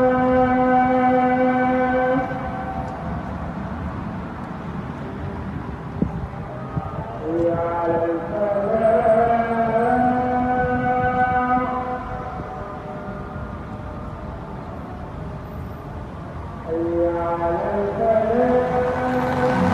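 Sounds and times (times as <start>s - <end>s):
muezzin's amplified call to prayer sung by a male voice: 0.0s - 3.2s, 6.3s - 15.0s, 16.5s - 19.7s
street noise murmur: 0.0s - 19.7s.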